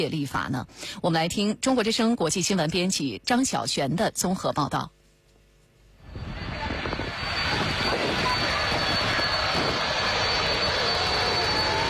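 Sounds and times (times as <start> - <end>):
speech: 0.0 - 5.0
airplane taking off: 6.0 - 11.8.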